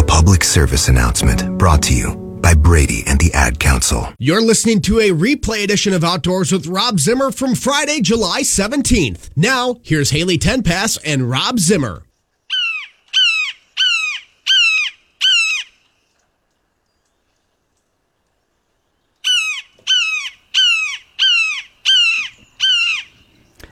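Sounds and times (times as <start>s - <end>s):
speech: 0.3s - 12.1s
Red-shouldered Hawk calling kee-ah notes: 12.5s - 15.8s, 19.2s - 23.2s.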